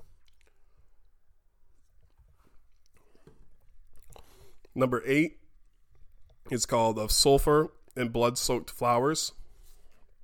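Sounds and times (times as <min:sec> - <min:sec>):
swallowing: 0:00.0 - 0:01.2, 0:02.0 - 0:04.8
person sipping whiskey with wet slurps and lip smacks: 0:00.0 - 0:04.8
speech: 0:04.8 - 0:05.4, 0:06.5 - 0:09.4.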